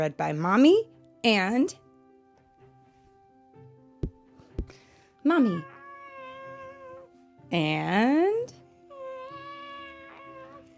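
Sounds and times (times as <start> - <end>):
speech: 0.0 - 1.8, 5.2 - 5.7, 7.5 - 8.6
cat meowing: 5.5 - 7.1, 8.9 - 10.7.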